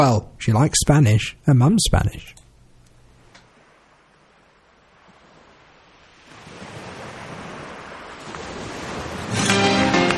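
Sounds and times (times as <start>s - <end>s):
speech: 0.0s - 2.4s
ocean surf washing onto a beach: 3.4s - 10.1s.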